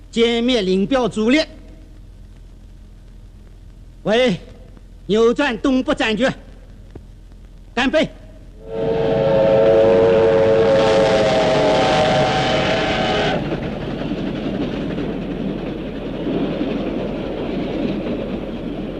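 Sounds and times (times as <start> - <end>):
speech: 0.2 - 1.6, 4.0 - 4.5, 5.1 - 6.4, 7.8 - 9.0
military train whistle blast: 8.6 - 13.6
military train speeding past at night: 8.6 - 18.9.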